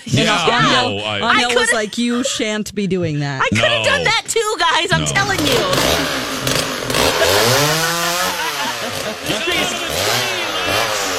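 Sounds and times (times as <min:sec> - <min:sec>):
laughter: 0:00.0 - 0:02.6, 0:03.4 - 0:11.1
speech: 0:00.1 - 0:07.9
chainsaw being started and revving: 0:04.9 - 0:11.1.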